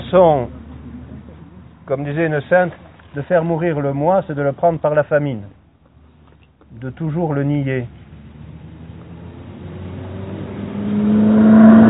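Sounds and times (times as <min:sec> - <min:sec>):
speech: 0:00.1 - 0:00.6, 0:01.9 - 0:05.6, 0:06.7 - 0:08.0
car engine revving as it passes: 0:07.9 - 0:11.8.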